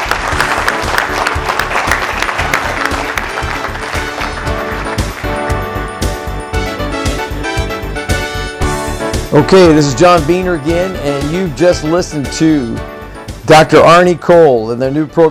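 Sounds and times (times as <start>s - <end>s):
audience clapping: 0.0s - 6.3s
upbeat music: 0.0s - 15.2s
speech: 9.4s - 12.9s, 13.5s - 15.2s.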